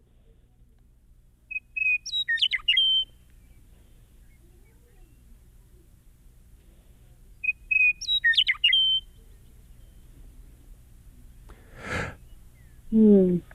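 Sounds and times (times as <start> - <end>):
western meadowlark song in prairie habitat: 1.5 - 6.0, 7.0 - 13.0
short breathy sound: 11.5 - 12.2.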